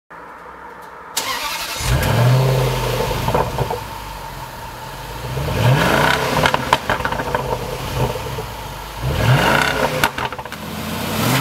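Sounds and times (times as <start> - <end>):
Ranger exhaust: 1.4 - 11.3.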